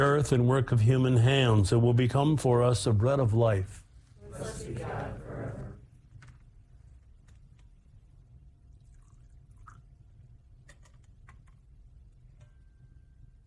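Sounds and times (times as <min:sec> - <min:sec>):
speech: 0:00.0 - 0:03.8, 0:04.4 - 0:05.6
steady low room hum: 0:00.0 - 0:13.4
drips: 0:08.7 - 0:10.0
water trickling into wine in a chalice: 0:08.7 - 0:10.2.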